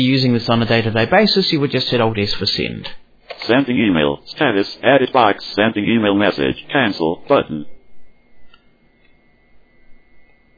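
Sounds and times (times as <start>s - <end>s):
speech: 0.0s - 7.7s
low hum: 0.0s - 10.5s
faint electronic clicks from keyboard device speaker: 8.4s - 9.2s.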